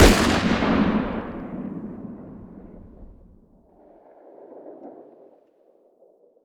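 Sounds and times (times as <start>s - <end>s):
pistol shot outdoors: 0.0s - 3.3s.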